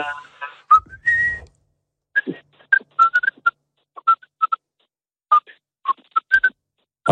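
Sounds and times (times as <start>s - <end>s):
person whistling a short choppy tune: 0.7s - 1.5s, 2.2s - 4.6s, 6.2s - 6.6s.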